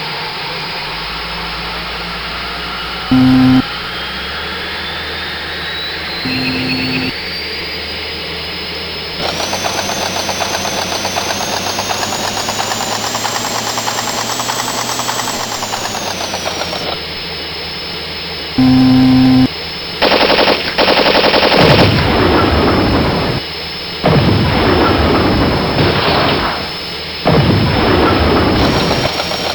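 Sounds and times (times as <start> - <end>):
M1 tank: 3.1 - 3.8, 6.0 - 7.2, 9.0 - 29.5.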